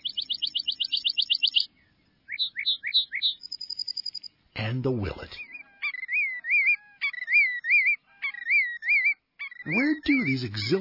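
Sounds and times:
lark bunting song: 0.0s - 10.8s
speech: 4.7s - 5.5s, 9.7s - 10.8s.

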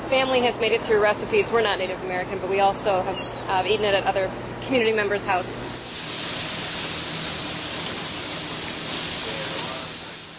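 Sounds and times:
speech: 0.1s - 5.7s
bacon and fry bread sizzling in hot oil: 5.7s - 10.3s.

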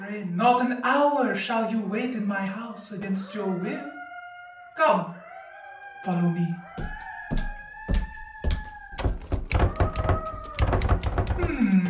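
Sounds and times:
speech: 0.1s - 4.0s, 4.8s - 5.2s, 6.0s - 7.5s
bolted door yanked and rattling against its lock: 8.5s - 11.8s.

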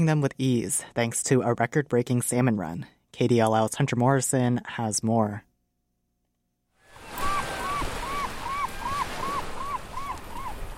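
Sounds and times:
speech: 0.0s - 5.5s
tidal water rushing at the mouth of the Kenai River in Alaska: 6.9s - 10.7s
short bird calls: 7.0s - 10.7s.

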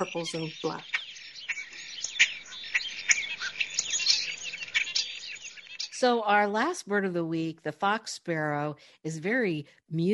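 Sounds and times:
speech: 0.0s - 1.0s, 6.0s - 10.1s
European starling giving harsh scratchy chatters, clicks and whistled notes: 0.0s - 6.0s.

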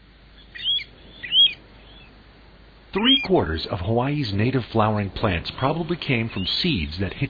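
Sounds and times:
faint low hum: 0.0s - 7.2s
Pacific golden plover whistled calls: 0.3s - 2.2s, 3.0s - 3.7s, 5.7s - 7.2s
speech: 3.0s - 7.2s.

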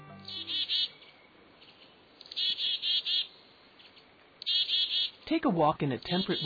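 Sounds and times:
mixed flock of chickadees kinglets and a downy woodpecker chirping in temperate woodland: 0.0s - 5.2s, 5.9s - 6.4s
faint steady hiss: 0.0s - 6.4s
speech: 5.3s - 6.4s.

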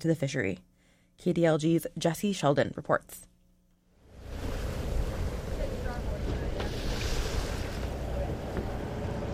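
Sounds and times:
speech: 0.0s - 3.3s
fishing boat engine rumble on open water in Bristol Bay Alaska: 4.0s - 9.3s
wash of waves: 4.1s - 9.0s.

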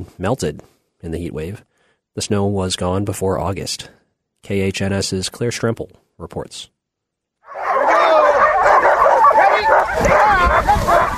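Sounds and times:
speech: 0.0s - 6.8s
hundreds of sled dogs barking and yipping at a glacier dog camp: 7.5s - 11.1s.

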